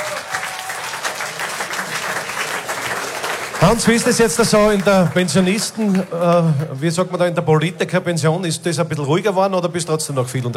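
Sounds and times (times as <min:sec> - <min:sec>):
audience applause: 0:00.0 - 0:07.2
speech: 0:03.7 - 0:10.5.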